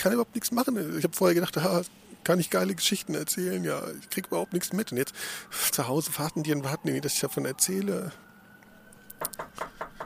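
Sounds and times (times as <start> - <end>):
speech: 0.0 - 8.3
knocking on a door in New York: 9.2 - 10.0.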